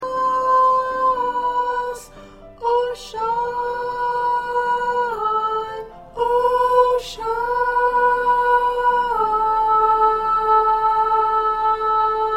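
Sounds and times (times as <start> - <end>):
second soprano singing: 0.0 - 12.3.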